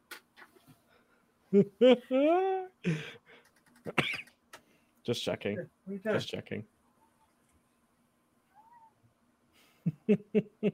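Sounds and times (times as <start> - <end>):
speech: 1.5 - 3.2, 5.0 - 6.7, 10.1 - 10.7
cat meowing: 8.5 - 9.0.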